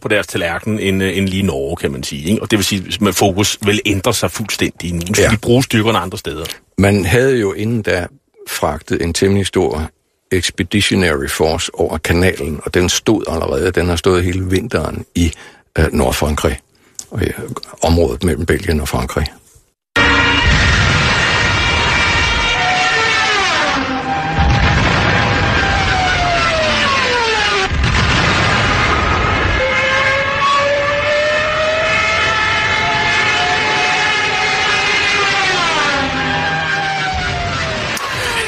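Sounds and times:
speech: 0.0s - 19.4s
Stuka dive bomber heavy engine roar: 20.0s - 38.4s
Stuka dive bomber siren wail: 20.0s - 38.4s.

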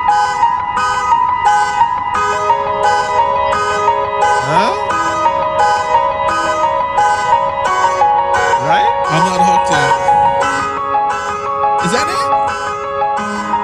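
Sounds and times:
swooping siren-like car alarm glides: 0.0s - 13.6s
steady synth chords in a keyboard tune: 1.7s - 13.6s.

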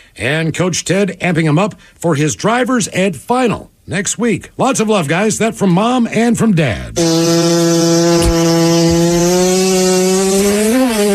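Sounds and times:
speech: 0.2s - 11.1s
cat fart sound effect: 6.9s - 11.1s.

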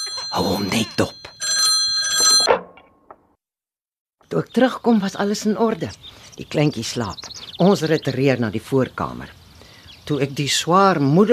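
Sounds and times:
telephone bell ringing: 0.0s - 2.6s
speech: 0.3s - 1.2s, 4.4s - 9.4s, 10.1s - 11.3s.

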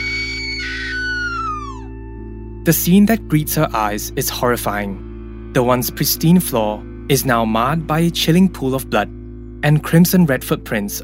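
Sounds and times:
woman's piercing sustained scream in a kitchen: 0.0s - 1.9s
speech: 2.6s - 11.0s.

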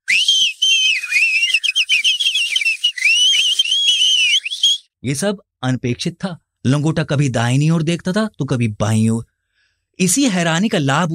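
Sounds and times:
several people whistling loudly: 0.0s - 4.9s
speech: 5.0s - 9.3s, 10.0s - 11.1s.

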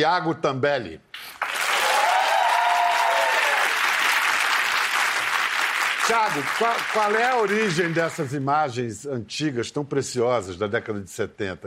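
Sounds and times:
speech: 0.0s - 1.1s, 6.1s - 11.6s
sizable audience applause: 1.3s - 8.4s.

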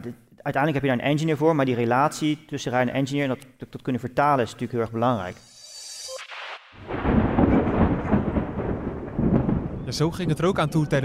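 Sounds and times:
speech: 0.0s - 5.5s, 9.9s - 11.0s
rolling thunder during a thunderstorm: 6.8s - 11.0s.

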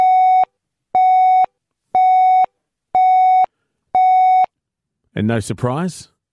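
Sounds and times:
radio time signal pips: 0.0s - 4.5s
speech: 5.2s - 6.1s.

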